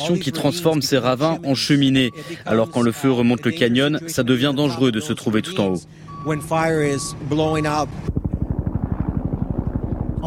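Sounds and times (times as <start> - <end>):
speech: 0.0 - 8.2
firefighting helicopter rotors chopping overhead: 6.2 - 10.2.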